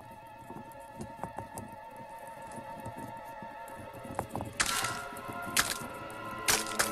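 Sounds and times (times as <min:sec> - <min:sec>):
steady tonal backing: 0:00.0 - 0:06.9
eggs cracking open as baby pterodactyls hatch: 0:04.5 - 0:06.9.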